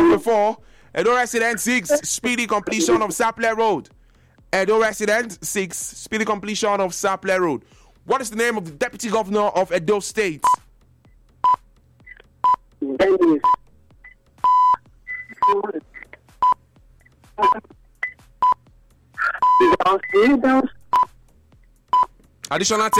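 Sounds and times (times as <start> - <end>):
speech: 0.2 - 10.6, 12.8 - 13.6, 17.4 - 17.8, 19.6 - 20.8, 22.5 - 22.9
short sharp electronic quiz buzzer beeps: 13.4 - 16.6, 17.4 - 20.3, 20.9 - 21.2, 21.9 - 22.2.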